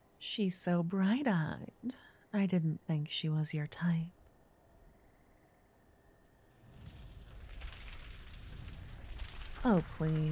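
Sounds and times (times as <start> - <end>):
speech: 0.2 - 4.2, 9.6 - 10.3
roaring crackle of elemental magic held in a palm: 6.4 - 10.3.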